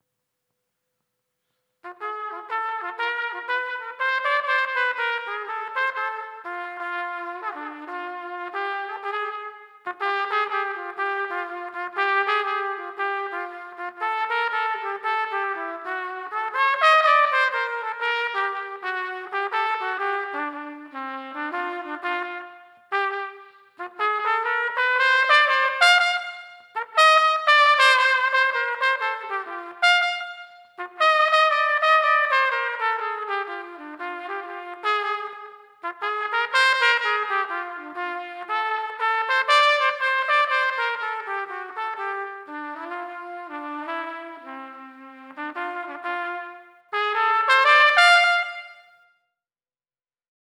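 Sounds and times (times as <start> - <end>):
trumpet solo: 1.8 - 49.2.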